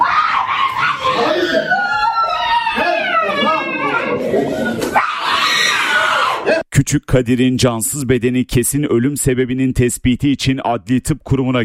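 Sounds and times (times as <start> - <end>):
other voices and crowd noise: 0.0 - 6.6
woman wailing and screaming in anguish: 0.9 - 6.6
speech: 6.8 - 11.6.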